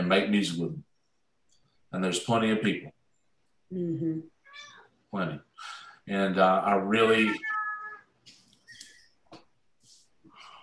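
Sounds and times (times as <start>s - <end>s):
speech: 0.1s - 0.9s, 1.9s - 3.0s, 3.7s - 7.5s
cat meowing in short strained cries: 4.4s - 4.9s, 7.0s - 8.1s.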